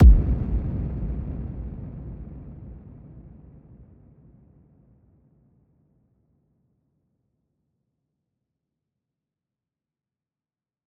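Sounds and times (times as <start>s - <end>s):
sub bass impact: 0.0s - 1.4s.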